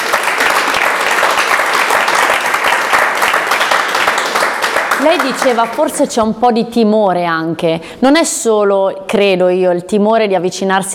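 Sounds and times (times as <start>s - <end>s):
audience applause, many hands clapping: 0.0s - 5.9s
speech: 5.0s - 10.9s.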